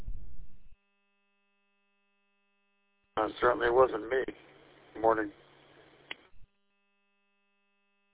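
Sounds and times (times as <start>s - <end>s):
speech: 3.2s - 5.4s
low rumbling air conditioner hum: 3.2s - 6.4s.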